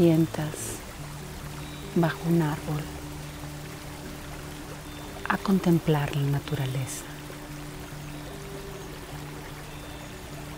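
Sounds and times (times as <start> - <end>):
speech: 0.0 - 0.8, 2.0 - 3.0, 5.3 - 7.1
waterfall pouring over rocks: 0.0 - 10.5.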